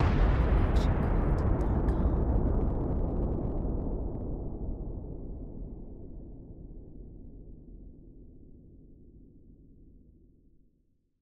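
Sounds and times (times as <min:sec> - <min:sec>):
deep distant explosion: 0:00.0 - 0:06.6.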